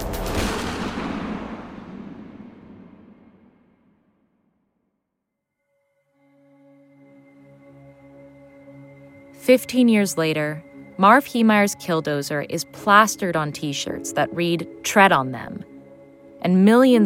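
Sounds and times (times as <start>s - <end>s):
gunshot with long reverberation: 0.3s - 3.2s
speech: 9.4s - 15.7s, 16.4s - 17.0s.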